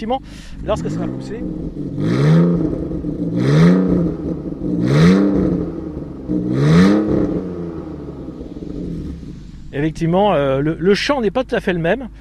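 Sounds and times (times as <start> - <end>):
speech: 0.0 - 5.1, 9.8 - 12.1
six-cylinder car engine revving: 0.0 - 12.1.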